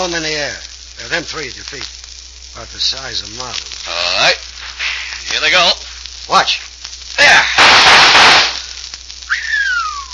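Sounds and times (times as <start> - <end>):
speech: 0.0 - 2.0, 2.6 - 4.4, 5.3 - 6.6
gunshots shattering pieces of adobe thrown in the air: 7.5 - 8.6
high whining bullet ricochet: 7.6 - 8.6.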